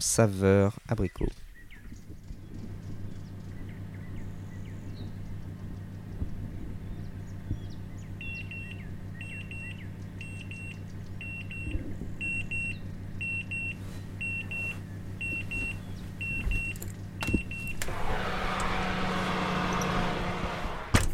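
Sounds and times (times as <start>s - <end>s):
speech: 0.0s - 1.4s
constant low hum: 0.0s - 21.1s
oven timer beeping when cooking finished: 8.2s - 17.8s.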